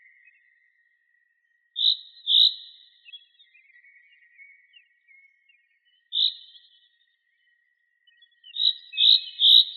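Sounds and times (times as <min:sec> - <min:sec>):
common chaffinch Fringilla coelebs calling with short bright notes: 0:01.8 - 0:06.8, 0:08.0 - 0:09.7.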